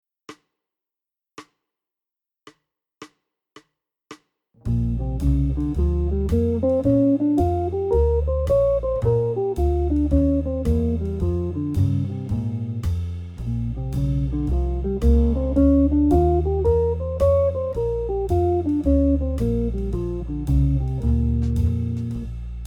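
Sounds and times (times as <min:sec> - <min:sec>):
guitar playing B-flat major pentatonic blues: 0:04.7 - 0:12.8, 0:13.9 - 0:22.2.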